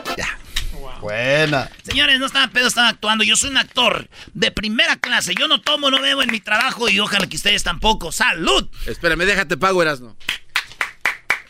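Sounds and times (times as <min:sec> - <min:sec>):
speech: 0:01.0 - 0:10.4
hand claps: 0:04.9 - 0:07.4, 0:10.2 - 0:11.4.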